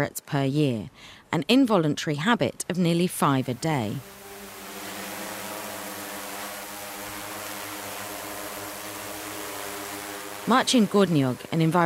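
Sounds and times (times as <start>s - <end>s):
speech: 0.0s - 4.2s, 10.5s - 11.8s
drone with sensors and cameras hovering over roofs and chimneys: 3.0s - 11.8s.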